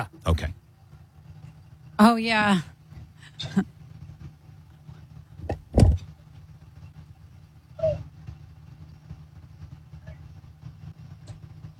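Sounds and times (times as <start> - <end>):
speech: 0.0 - 0.6, 2.0 - 2.7, 3.4 - 3.8
pickup truck engine rumbling while backing into a driveway: 0.0 - 11.7
sharp clunks and thumps: 5.4 - 6.2.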